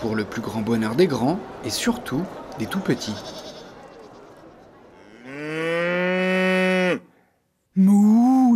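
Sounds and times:
speech: 0:00.0 - 0:03.5
chatter in a large indoor hall: 0:00.0 - 0:08.5
cow mooing: 0:05.0 - 0:07.1.

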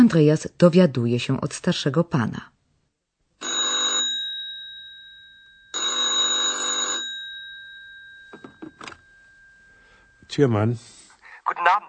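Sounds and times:
speech: 0:00.1 - 0:02.5, 0:10.3 - 0:11.8
telephone ringing with a trilling electric bell at a home in Berlin: 0:03.4 - 0:10.2.

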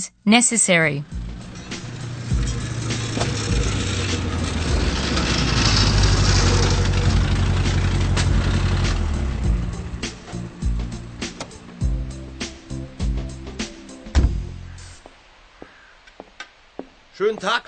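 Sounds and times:
speech: 0:00.0 - 0:01.2, 0:17.3 - 0:17.6
car with rough worn exhaust driving in and idling at a car repair garage: 0:01.0 - 0:13.6
clunks and knocks: 0:01.2 - 0:11.8, 0:14.1 - 0:14.6.

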